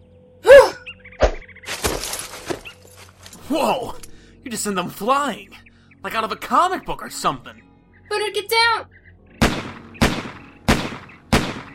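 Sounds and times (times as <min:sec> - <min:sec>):
speech: 0:03.5 - 0:09.0
video game gunshots: 0:09.4 - 0:11.7.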